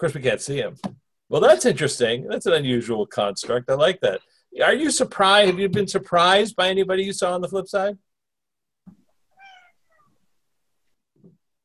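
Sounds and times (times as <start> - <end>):
speech: 0.0 - 8.1
cat meowing with a rising harmonic tone: 9.4 - 10.2.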